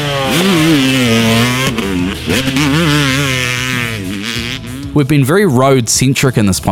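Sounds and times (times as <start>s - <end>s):
dirt bike engine revving: 0.6s - 5.0s
speech: 5.0s - 6.7s.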